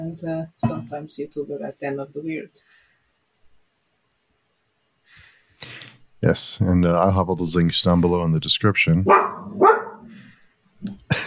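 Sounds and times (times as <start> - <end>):
speech: 0.0 - 2.8, 5.1 - 9.8
dog barking: 9.0 - 10.3.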